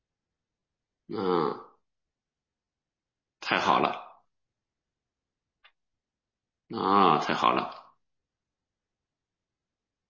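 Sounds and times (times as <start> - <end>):
speech: 1.1 - 1.7, 3.5 - 4.0, 6.7 - 7.8
loud throaty burp: 1.1 - 1.8, 6.7 - 7.8.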